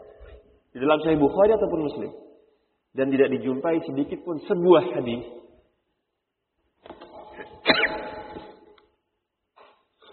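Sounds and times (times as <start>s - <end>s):
speech: 0.8s - 2.3s, 2.9s - 5.4s
person sneezing forcefully: 7.6s - 8.1s.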